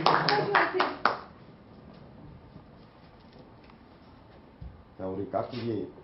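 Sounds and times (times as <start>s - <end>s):
burst of hand clapping: 0.0s - 1.3s
speech: 5.0s - 6.0s.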